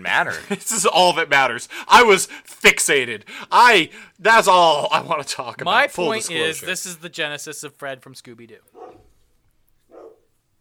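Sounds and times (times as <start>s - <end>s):
speech: 0.0s - 9.0s
excited dog barking muffled: 8.7s - 9.2s, 9.8s - 10.3s.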